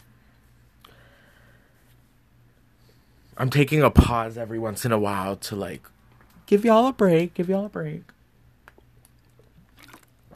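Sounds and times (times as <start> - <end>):
speech: 3.4 - 8.2
person drinking water with sips, gulps and swallows: 9.1 - 10.3.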